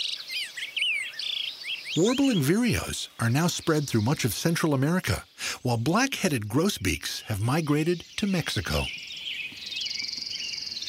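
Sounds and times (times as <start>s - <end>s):
robins singing: 0.0s - 10.8s
orange-crowned warbler descending trill: 1.8s - 9.0s
speech: 2.0s - 9.0s.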